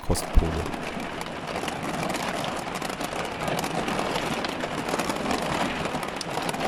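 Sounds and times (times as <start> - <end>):
heavy rain drumming on the metal roof of a camper van: 0.0 - 6.6
speech: 0.1 - 1.1.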